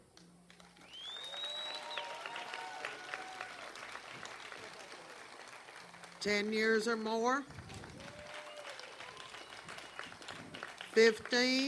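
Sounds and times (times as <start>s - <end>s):
large festival crowd applauding: 0.5s - 11.6s
whistles from a festival crowd: 0.8s - 3.4s, 8.0s - 10.6s
speech: 6.2s - 7.6s, 11.0s - 11.6s.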